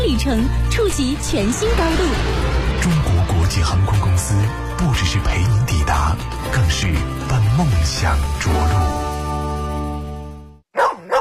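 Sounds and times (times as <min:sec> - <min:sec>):
sustained music passage: 0:00.0 - 0:10.5
speech: 0:00.2 - 0:09.1
dog barking: 0:10.7 - 0:11.2.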